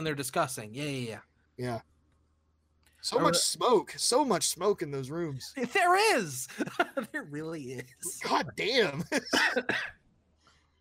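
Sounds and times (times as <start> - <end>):
speech: 0.0 - 1.9, 3.0 - 10.0
laughter: 6.4 - 9.7
harsh coughs: 9.2 - 10.0.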